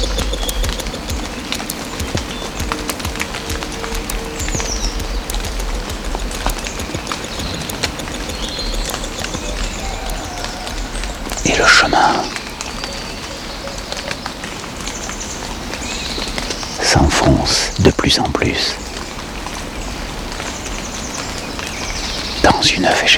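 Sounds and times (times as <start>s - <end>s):
sharp clopping or tapping sounds: 0.0s - 12.4s
birds chirping in a Pyrenean forest: 0.0s - 23.1s
speech: 17.5s - 18.9s, 22.7s - 23.1s.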